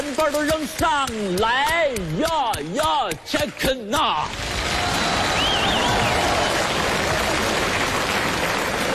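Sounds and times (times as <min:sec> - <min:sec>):
speech: 0:00.2 - 0:04.8
large audience applause: 0:04.3 - 0:08.9.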